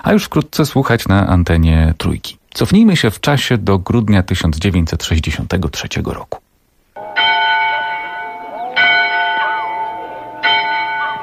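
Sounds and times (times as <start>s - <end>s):
speech: 0.0s - 6.4s
church bell in a red-brick village church tower ringing: 7.0s - 11.2s.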